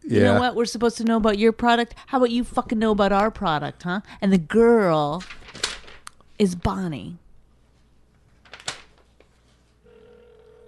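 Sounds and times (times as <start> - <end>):
speech: 0.1 - 5.6, 6.4 - 7.2
telephone ringing: 9.8 - 10.6.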